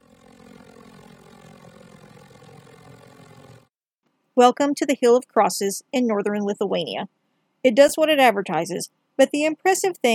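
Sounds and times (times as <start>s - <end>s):
propeller airplane engine droning in flight: 0.0s - 3.8s
speech: 4.4s - 10.1s.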